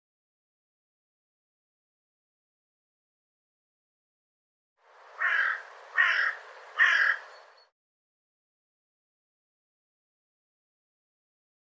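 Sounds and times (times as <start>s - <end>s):
bird giving hoarse squawking caws: 5.2s - 7.7s.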